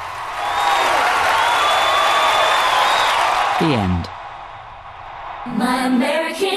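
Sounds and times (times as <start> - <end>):
large standing audience clapping: 0.0 - 4.2
large standing audience cheering: 0.0 - 6.4
high whistles from audience: 0.4 - 3.4
whoops from audience: 0.4 - 3.4
speech: 3.6 - 4.2.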